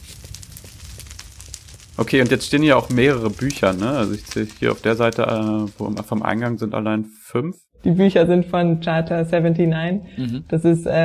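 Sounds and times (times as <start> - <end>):
fire crackling with pops and snaps: 0.0 - 7.0
speech: 2.0 - 11.0.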